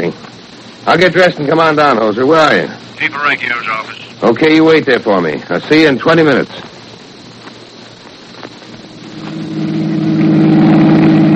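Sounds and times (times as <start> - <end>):
speech: 0.9 - 6.7
car engine revving while driving: 9.1 - 11.3.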